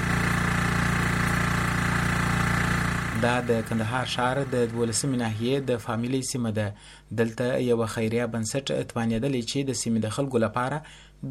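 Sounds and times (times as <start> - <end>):
generator running at a clean-water point in Kandahar city: 0.0 - 6.0
speech: 3.2 - 11.3.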